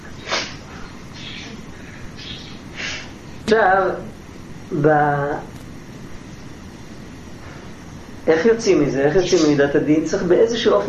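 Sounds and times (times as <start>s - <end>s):
steady hiss of noise: 0.0s - 10.8s
bird chirping: 0.2s - 2.8s
speech: 3.5s - 5.6s, 8.3s - 10.8s.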